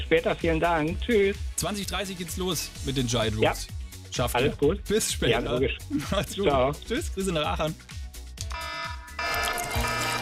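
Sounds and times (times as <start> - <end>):
speech: 0.1 - 8.0
bright electronic alarm jingle sound effect: 8.5 - 10.2.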